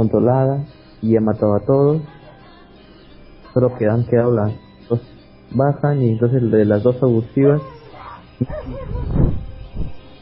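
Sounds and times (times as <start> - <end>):
speech: 0.0 - 2.2, 3.6 - 7.8, 8.4 - 9.1
small female dog yipping and whining: 7.6 - 9.4.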